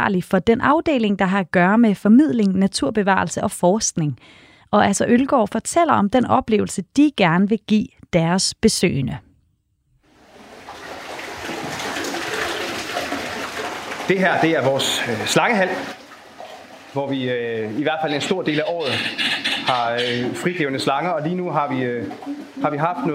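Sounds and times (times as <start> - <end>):
speech: 0.0 - 9.3, 14.1 - 16.0, 16.9 - 23.1
noise: 0.0 - 23.1
trumpeter birds hooting and cooing: 17.7 - 23.1.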